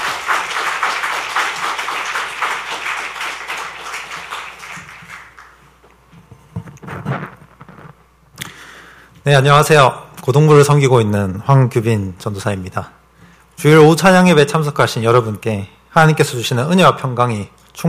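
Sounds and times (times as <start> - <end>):
crowd applauding at a church afternoon worship service: 0.0 - 5.6
speech: 9.3 - 13.0, 13.6 - 17.8.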